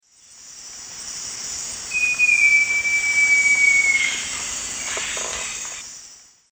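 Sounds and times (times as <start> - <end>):
Jacamerops aureus song in the Eastern Lowlands of South America: 1.9 - 5.8.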